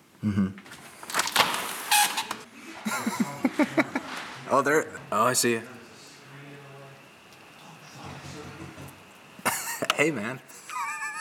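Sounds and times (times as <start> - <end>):
speech: 0.2 - 0.8, 4.5 - 5.8, 10.0 - 10.5
door opening with clicks, rattling and scraping: 1.0 - 2.5
laughter: 2.5 - 4.6, 8.0 - 11.1.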